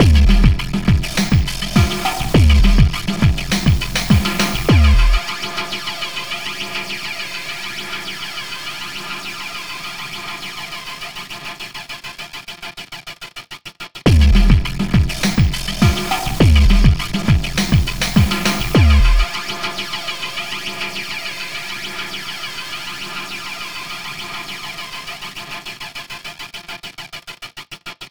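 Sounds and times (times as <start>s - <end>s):
dance beat: 0.0s - 5.8s, 14.1s - 19.9s.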